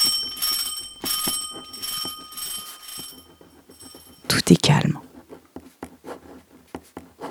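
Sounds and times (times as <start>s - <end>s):
alarm clock bell ringing: 0.0s - 4.8s
speech: 4.5s - 5.0s.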